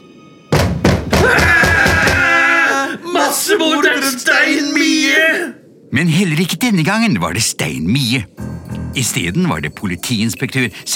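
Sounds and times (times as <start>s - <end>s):
knocking on a door: 0.6s - 2.2s
speech: 3.3s - 10.9s.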